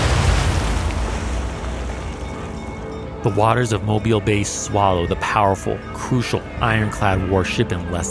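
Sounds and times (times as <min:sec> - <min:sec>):
torpedo explosion against ironclad warship: 0:00.0 - 0:02.2
speech: 0:03.2 - 0:08.0.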